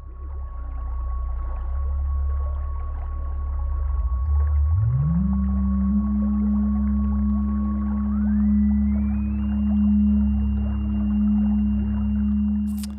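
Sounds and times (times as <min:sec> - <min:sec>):
synthesized whale-like electronic tone made by turning dials: 0:00.0 - 0:12.9
higher synthesized whistling line gliding up: 0:07.9 - 0:12.9.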